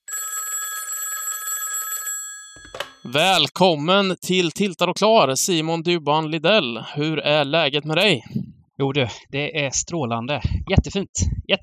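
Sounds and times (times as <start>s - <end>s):
electronic telephone ring tone while placing a call: 0.0s - 3.4s
speech: 2.6s - 11.6s.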